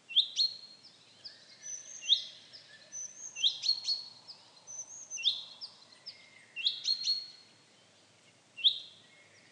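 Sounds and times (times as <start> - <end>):
common chaffinch calling: 0.0 - 7.5.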